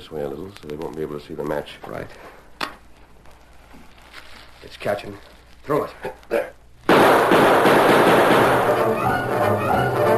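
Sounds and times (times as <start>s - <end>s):
speech: 0.1s - 2.4s, 4.6s - 6.5s, 8.7s - 10.1s
gunfire from outlaws in a night-time radio drama scene: 6.8s - 9.1s.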